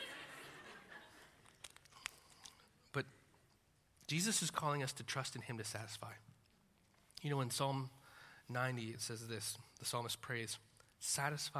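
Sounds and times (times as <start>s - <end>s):
laughter: 0.0s - 1.4s
person sipping water: 1.7s - 2.9s
speech: 2.9s - 3.2s, 4.1s - 6.3s, 7.2s - 11.5s.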